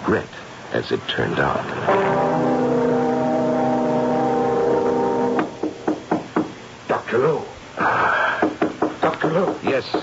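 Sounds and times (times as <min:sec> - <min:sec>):
soft hiss: 0:00.0 - 0:10.0
speech: 0:00.1 - 0:02.5, 0:07.1 - 0:08.0, 0:09.2 - 0:10.0
firm knocks on a door: 0:05.4 - 0:06.6, 0:08.4 - 0:10.0.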